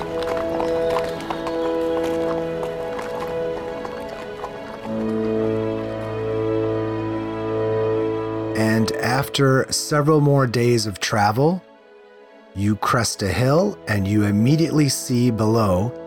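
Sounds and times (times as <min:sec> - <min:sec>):
hooves of horses ridden along a trade road clip-clopping: 0:00.0 - 0:08.7
music: 0:00.0 - 0:16.0
speech: 0:09.2 - 0:11.7, 0:12.6 - 0:16.0.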